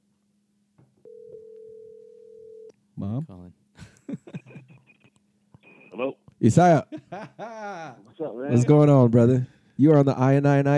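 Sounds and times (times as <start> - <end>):
phone dial tone while placing a call: 1.0 - 2.7
speech: 3.0 - 4.6, 6.0 - 10.7
laughter: 3.8 - 8.9.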